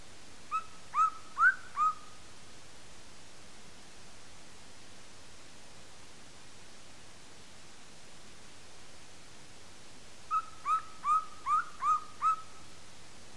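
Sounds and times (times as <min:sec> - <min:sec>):
golden eagle Aquila chrysaetos calling: 0:00.5 - 0:02.2, 0:10.3 - 0:12.6.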